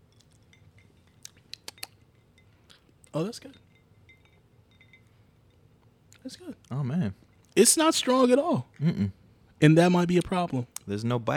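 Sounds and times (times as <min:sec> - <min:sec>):
low hum: 0:00.0 - 0:11.3
drinking glasses clinking in a toast: 0:00.4 - 0:05.7
speech: 0:03.1 - 0:03.7, 0:06.2 - 0:11.3.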